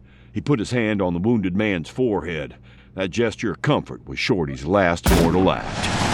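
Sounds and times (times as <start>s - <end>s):
speech: 0.4s - 6.0s
gunfire in a wartime radio drama: 5.1s - 5.6s.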